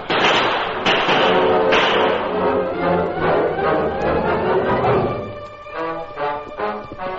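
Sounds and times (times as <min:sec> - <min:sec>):
sharp bursts of gunfire sound effects: 0:00.0 - 0:02.4
sustained musical tones: 0:01.4 - 0:07.1.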